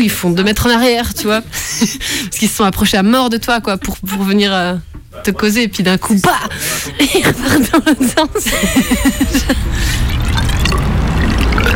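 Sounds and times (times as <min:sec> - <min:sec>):
speech: 0:00.0 - 0:10.5
laughter: 0:00.7 - 0:02.1, 0:05.2 - 0:10.0
water poured into a pump to prime it: 0:10.0 - 0:11.7.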